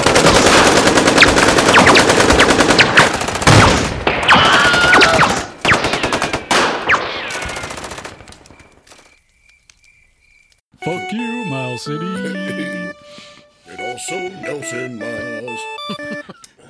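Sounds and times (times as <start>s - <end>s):
rapid machine-gun fire: 0.0s - 8.2s
laughter: 12.2s - 13.0s, 14.8s - 16.6s.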